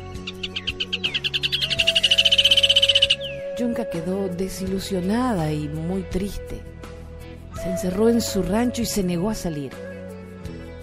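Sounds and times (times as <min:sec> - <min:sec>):
bird's sharp high-pitched whistle speeding into a trill: 0:00.1 - 0:03.8
speech: 0:03.6 - 0:06.8, 0:07.6 - 0:09.9.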